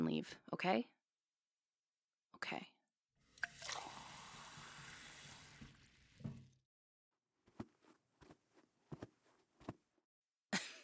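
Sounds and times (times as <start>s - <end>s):
speech: 0.1s - 1.0s, 2.4s - 2.8s
water pouring into a glass: 3.3s - 6.6s.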